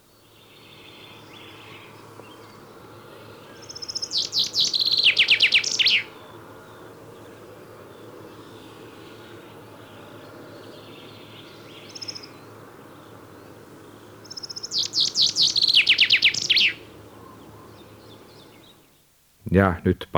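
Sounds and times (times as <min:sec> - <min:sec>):
chaffinch song: 0:00.3 - 0:06.2, 0:11.0 - 0:20.1
speech: 0:19.6 - 0:20.1.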